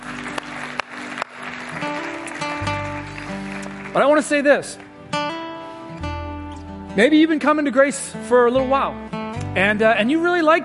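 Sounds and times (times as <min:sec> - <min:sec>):
large crowd applauding: 0:00.0 - 0:05.2
speech: 0:03.9 - 0:05.2, 0:07.0 - 0:10.6.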